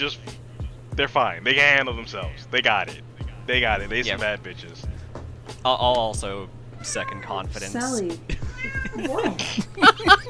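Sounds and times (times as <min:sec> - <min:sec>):
speech: 0:00.0 - 0:00.3, 0:01.0 - 0:04.9, 0:05.6 - 0:10.2
cat meowing: 0:06.8 - 0:09.2
laughter: 0:08.2 - 0:10.2.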